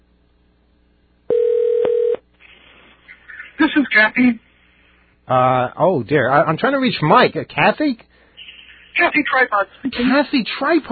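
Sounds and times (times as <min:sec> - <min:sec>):
telephone ringing tone on a call to a phone in Wisconsin: 0:01.3 - 0:02.2
speech: 0:03.6 - 0:04.5, 0:05.3 - 0:08.1, 0:09.0 - 0:10.9.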